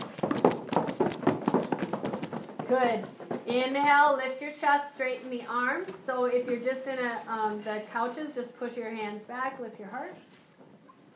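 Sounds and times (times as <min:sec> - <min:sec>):
feet stomping on a floor: 0:00.0 - 0:03.5
speech: 0:02.7 - 0:10.3.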